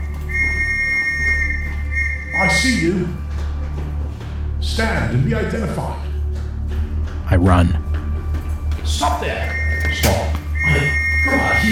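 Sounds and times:
shrill whistle blast: 0:00.0 - 0:02.8, 0:09.4 - 0:11.7
low rumbling background: 0:00.0 - 0:11.7
speech: 0:02.6 - 0:03.2, 0:04.6 - 0:06.1, 0:07.3 - 0:07.8, 0:08.9 - 0:10.2.

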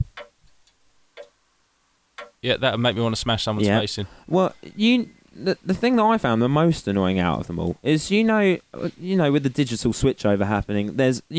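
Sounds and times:
grandfather clock ticking: 0:00.0 - 0:01.4, 0:02.2 - 0:02.4
speech: 0:02.4 - 0:11.3.

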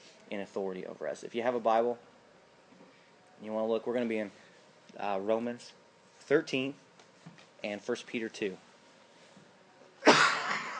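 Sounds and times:
speech: 0:00.3 - 0:02.2, 0:03.4 - 0:08.7
single sharp raspy cough: 0:10.0 - 0:10.7.

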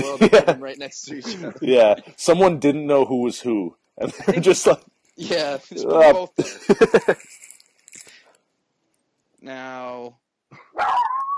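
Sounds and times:
laughter: 0:00.0 - 0:07.3
speech: 0:00.0 - 0:07.4, 0:09.4 - 0:11.2
dog whining: 0:10.6 - 0:11.3
dog barking at someone urinating: 0:10.8 - 0:11.2.

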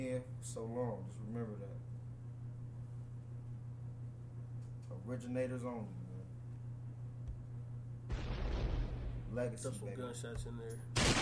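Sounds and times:
speech: 0:00.0 - 0:02.0, 0:04.9 - 0:06.0, 0:09.3 - 0:11.1
steady low hum: 0:00.0 - 0:11.1
loud gunshot sound effect: 0:08.1 - 0:09.5, 0:11.0 - 0:11.1.

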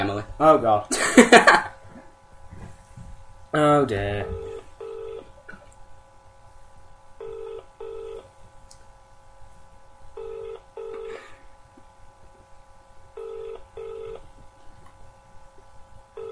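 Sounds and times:
speech: 0:00.0 - 0:01.7, 0:03.5 - 0:04.5
faint hum: 0:00.0 - 0:16.2
telephone ringback tone for an unanswered prank call: 0:04.2 - 0:05.3, 0:07.2 - 0:08.3, 0:10.2 - 0:11.2, 0:13.2 - 0:14.2.

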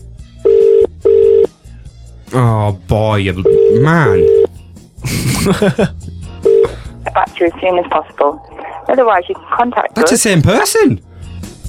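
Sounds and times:
telephone ringback tone on an unanswered call: 0:00.4 - 0:01.5, 0:03.4 - 0:04.5, 0:06.4 - 0:06.7
speech: 0:02.3 - 0:04.3, 0:05.0 - 0:06.1, 0:07.2 - 0:11.1
laughter: 0:05.0 - 0:06.0.

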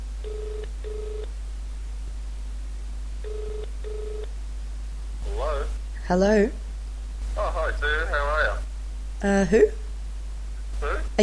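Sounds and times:
faint phone line hum: 0:00.0 - 0:11.2
telephone ringing tone on an outgoing phone call: 0:00.2 - 0:01.3, 0:03.2 - 0:04.3
speech: 0:06.1 - 0:06.6, 0:09.2 - 0:09.8.

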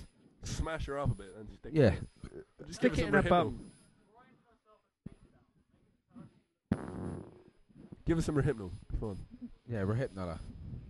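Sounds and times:
speech: 0:00.7 - 0:03.8, 0:08.1 - 0:10.6
fart into the microphone: 0:06.2 - 0:08.1.

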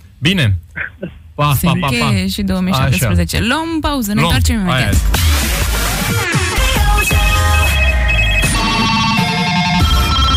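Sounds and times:
speech: 0:00.2 - 0:05.3, 0:06.1 - 0:07.2
telephone ringing with an incoming call in a radio studio: 0:07.1 - 0:10.3.

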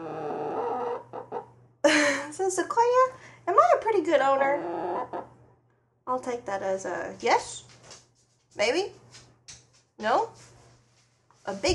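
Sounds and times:
pet chicken clucking: 0:00.0 - 0:01.5, 0:04.3 - 0:05.3
speech: 0:02.4 - 0:05.2, 0:06.1 - 0:07.6, 0:08.6 - 0:09.0, 0:10.0 - 0:10.5, 0:11.4 - 0:11.7.

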